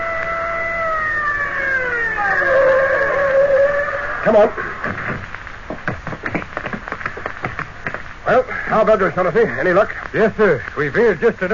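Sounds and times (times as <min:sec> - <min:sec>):
car siren winding down in a falling wail: 0:00.0 - 0:04.8
speech: 0:04.2 - 0:05.3, 0:08.3 - 0:11.5.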